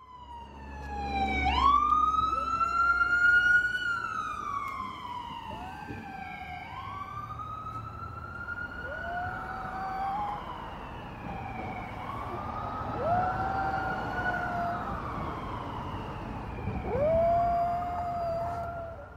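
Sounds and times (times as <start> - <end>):
loud wailing emergency siren: 0.0 - 19.1
small Havanese dog howling: 13.0 - 15.0, 16.8 - 19.1.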